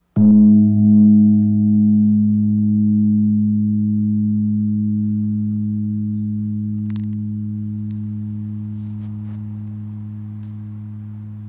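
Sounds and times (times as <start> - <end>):
8.4 kg Burmese gong tuned to G sharp ringing: 0.2 - 11.4.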